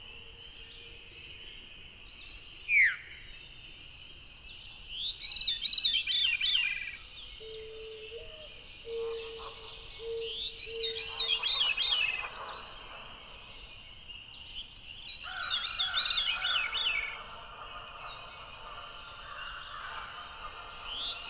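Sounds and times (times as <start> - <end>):
Veery singing rolling downward-spiraling phrases: 5.0 - 21.2.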